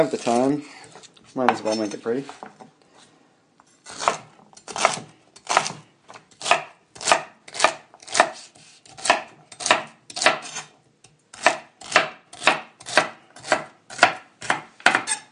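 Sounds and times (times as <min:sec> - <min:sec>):
speech: 0:00.0 - 0:02.7
knife chopping carrot, celery and onion for a mirepoix: 0:03.9 - 0:10.7, 0:11.3 - 0:15.2.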